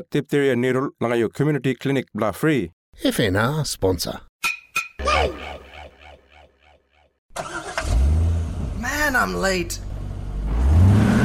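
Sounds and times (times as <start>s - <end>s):
speech: 0.0s - 4.3s, 9.1s - 9.9s
car engine in traffic cranking and revving: 7.3s - 8.9s, 9.8s - 11.2s.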